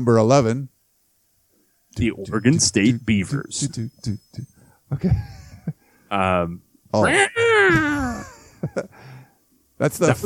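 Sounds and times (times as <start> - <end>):
speech: 0.0 - 0.7, 2.0 - 9.1, 9.8 - 10.2
human voice imitating a cat meow: 7.0 - 8.2.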